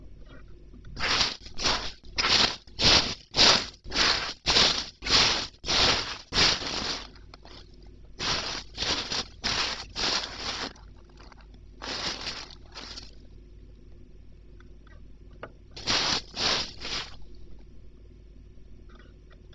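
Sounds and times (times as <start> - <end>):
footsteps on a beach: 1.0 - 7.6, 8.2 - 10.7, 11.8 - 13.1, 15.8 - 17.2.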